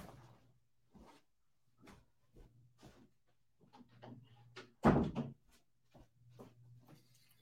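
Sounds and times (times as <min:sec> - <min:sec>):
soft shuffling and handling noises from someone moving: 0:00.0 - 0:03.8, 0:05.5 - 0:07.3
door shutting with a thud: 0:04.8 - 0:05.4.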